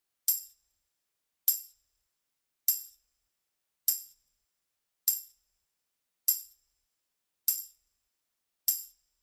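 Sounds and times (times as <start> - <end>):
tambourine: 0.0 - 0.8, 1.5 - 2.0, 2.7 - 3.2, 3.9 - 4.4, 5.1 - 5.6, 6.3 - 6.8, 7.5 - 8.1, 8.7 - 9.2.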